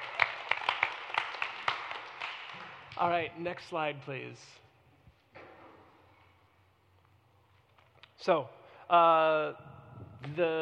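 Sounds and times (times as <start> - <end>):
small group audience applause: 0.0 - 2.9
speech: 3.0 - 4.6, 8.2 - 10.5.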